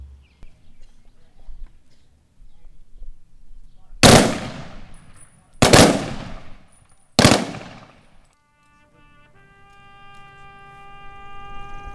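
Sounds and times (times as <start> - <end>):
rifle salute volleys at a veterans' memorial ceremony: 4.0 - 8.2.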